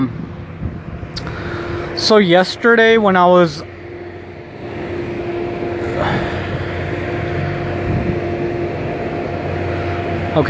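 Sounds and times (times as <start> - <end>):
large truck engine droning and whining along the road: 0.0 - 10.4
speech: 2.0 - 3.7.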